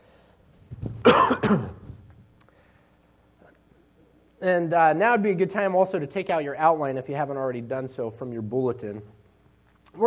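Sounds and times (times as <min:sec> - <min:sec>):
speech: 0:01.0 - 0:01.8, 0:04.4 - 0:09.2
person with a cold clearing throat: 0:01.0 - 0:02.0
person with a cold coughing: 0:01.0 - 0:02.0.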